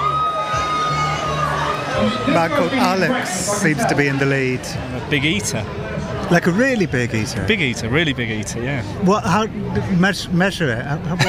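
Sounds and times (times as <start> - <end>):
crowd of women screaming and cheering at an eating contest: 0.0 - 3.4
speech: 2.0 - 11.2.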